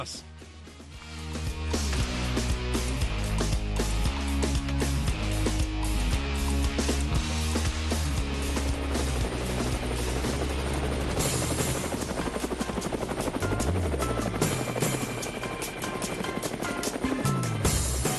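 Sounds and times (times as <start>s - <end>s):
speech: 0.0s - 0.3s
helicopter rotor chop: 1.0s - 18.1s.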